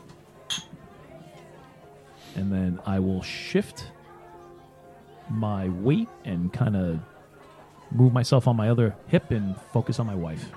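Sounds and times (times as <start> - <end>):
low murmur of voices: 0.0 - 10.5
glasses clinking in a toast: 0.5 - 0.8
speech: 2.3 - 4.0, 5.3 - 7.1, 7.9 - 10.5.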